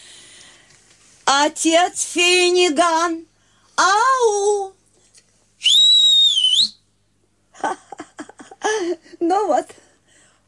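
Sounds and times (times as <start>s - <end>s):
speech: 1.3s - 4.8s, 7.6s - 7.8s, 8.7s - 9.8s
woman whistling loudly to call someone over: 5.6s - 6.8s.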